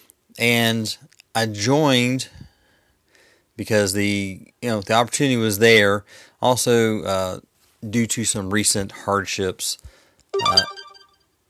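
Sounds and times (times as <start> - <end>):
speech: 0.4 - 2.4, 3.6 - 10.8
mobile phone ringtone: 10.4 - 11.1.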